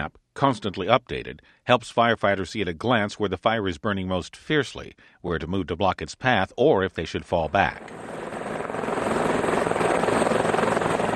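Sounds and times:
speech: 0:00.0 - 0:08.1
helicopter rotor thumping at an air operations tarmac: 0:07.7 - 0:11.1.

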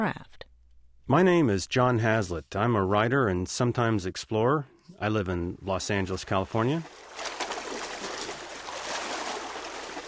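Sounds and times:
speech: 0:00.0 - 0:00.3, 0:01.1 - 0:07.3
water sloshing and rushing around a balsa raft replica at sea: 0:06.3 - 0:10.0.

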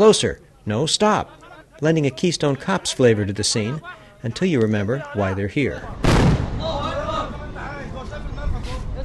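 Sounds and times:
speech: 0:00.0 - 0:06.8
heavy booming explosions in a war zone: 0:06.0 - 0:07.3
rumbling din: 0:06.0 - 0:08.0.

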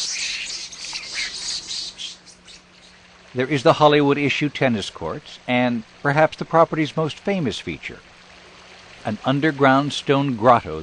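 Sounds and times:
parrots squawking: 0:00.0 - 0:03.0
peacocks screeching: 0:00.0 - 0:03.0
speech: 0:03.3 - 0:08.1, 0:09.0 - 0:10.8.

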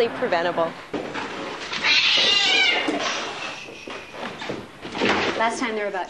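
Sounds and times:
speech: 0:00.0 - 0:01.0, 0:05.4 - 0:06.0
many hoarded cats meowing and caterwauling in a home: 0:01.7 - 0:03.6.

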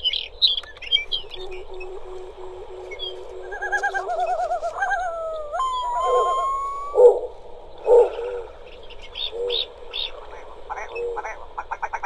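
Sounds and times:
snowy owl low hoots: 0:00.0 - 0:11.8
rising wavering wail: 0:01.0 - 0:09.8
long-tailed duck yodelling calls: 0:01.2 - 0:07.3.

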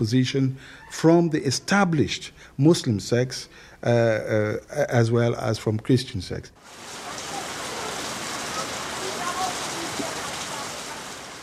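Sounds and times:
speech: 0:00.0 - 0:06.8
heavy afternoon rain downpour: 0:06.6 - 0:11.4.

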